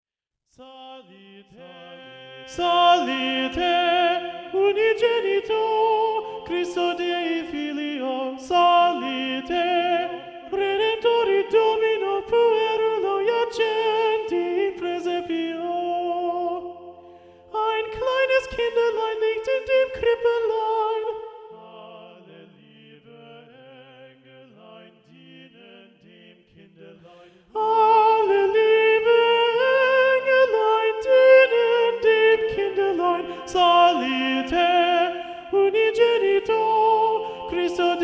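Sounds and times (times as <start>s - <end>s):
schola singing with predominant soprano: 0.6s - 38.0s.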